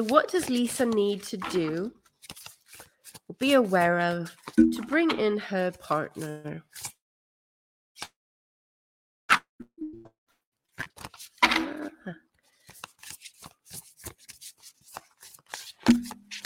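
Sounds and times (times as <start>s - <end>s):
speech: 0.0s - 2.4s, 3.3s - 7.0s, 10.8s - 12.2s
deck of cards being shuffled: 0.0s - 4.6s, 6.2s - 7.0s, 10.8s - 11.5s, 12.5s - 16.4s.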